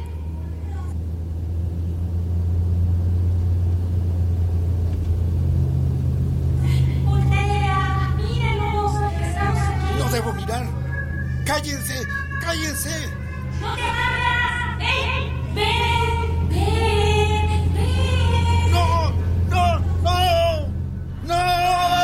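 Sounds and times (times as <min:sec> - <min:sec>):
car engine rumbling low and loud coming fast along the road: 0:00.0 - 0:22.0
indistinct voices: 0:06.6 - 0:22.0.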